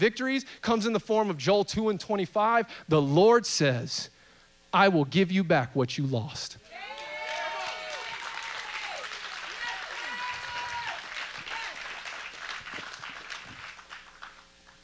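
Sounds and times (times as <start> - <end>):
speech: 0.0 - 4.1, 4.7 - 6.9
people shouting: 6.7 - 11.8
audience clapping and cheering: 6.7 - 14.8.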